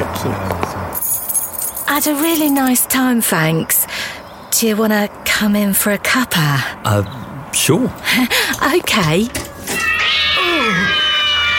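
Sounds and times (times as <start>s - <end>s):
speech: 0.2s - 0.5s, 2.0s - 3.8s, 4.6s - 9.4s
cat meowing: 9.8s - 11.5s.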